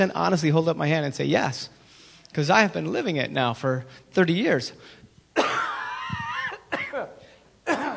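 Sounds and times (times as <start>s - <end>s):
speech: 0.0s - 5.6s
harsh raspy coughs: 5.4s - 7.9s.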